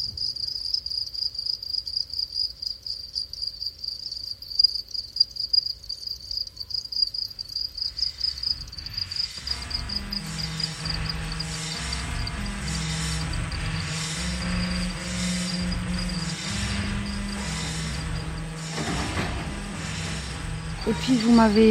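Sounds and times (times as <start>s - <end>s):
house cricket chirping: 0.0s - 21.6s
brief burst of noise: 7.8s - 21.6s
soft low rumble: 8.0s - 21.6s
speech: 20.9s - 21.6s.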